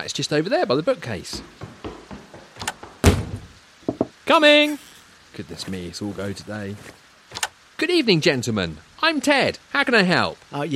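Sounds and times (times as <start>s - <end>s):
speech: 0.0s - 1.7s, 4.3s - 7.0s, 7.8s - 10.7s
door clunks and rattles: 1.4s - 4.1s
door banging shut: 2.6s - 4.0s.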